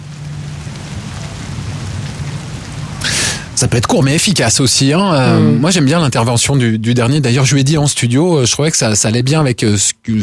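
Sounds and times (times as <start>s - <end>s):
rain falling on the ground: 0.0s - 9.6s
speech: 3.6s - 10.2s.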